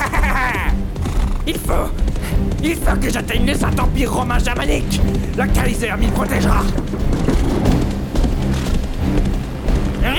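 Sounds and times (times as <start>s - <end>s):
laughter: 0.0s - 0.9s
steady heavy rain pouring down: 0.0s - 10.1s
speech: 1.5s - 7.6s.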